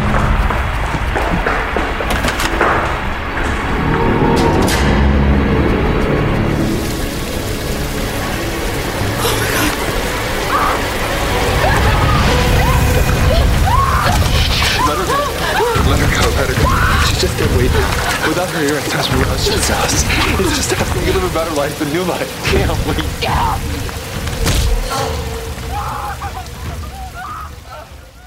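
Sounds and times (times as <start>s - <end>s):
water sloshing and splashing: 0.0s - 28.2s.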